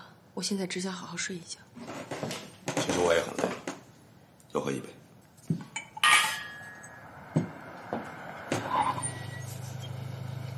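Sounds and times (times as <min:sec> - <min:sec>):
speech: 0:00.4 - 0:02.3, 0:03.0 - 0:03.5, 0:04.5 - 0:05.0
car carrying military police braking outside a courtyard gate: 0:06.8 - 0:10.5.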